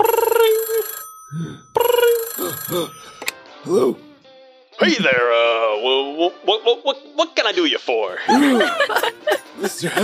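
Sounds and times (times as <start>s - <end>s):
telephone ringing with a rapid trilling bell: 0.0s - 3.4s
speech: 3.6s - 4.0s, 4.9s - 10.0s
laughter: 8.2s - 10.0s.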